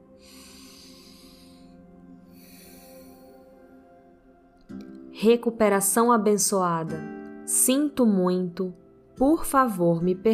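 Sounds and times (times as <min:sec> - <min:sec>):
slow deep breath in and out at the start of a guided prayer practice: 0:00.0 - 0:04.0
speech: 0:05.2 - 0:10.3.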